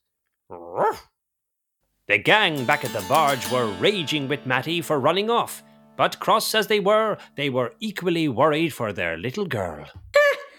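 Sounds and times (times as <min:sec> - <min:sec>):
dog growling and barking: 0:00.5 - 0:01.1
speech: 0:00.5 - 0:01.1, 0:02.1 - 0:10.0.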